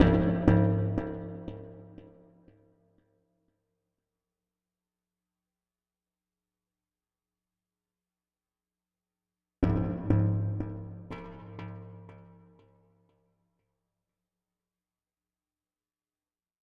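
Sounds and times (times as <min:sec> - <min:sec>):
minimal ambient cinematic drums: 0:00.0 - 0:02.0, 0:09.6 - 0:12.1.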